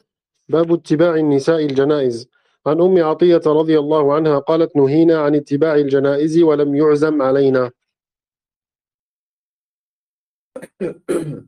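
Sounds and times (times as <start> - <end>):
speech: 0.5 - 7.8, 10.6 - 11.4
person clearing their throat: 10.6 - 11.4
person coughing: 10.6 - 11.4.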